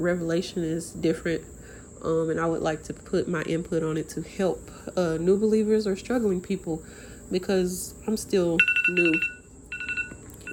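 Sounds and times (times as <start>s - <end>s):
speech: 0.0s - 9.4s
phone alarm electronic beeping tones: 8.6s - 10.5s.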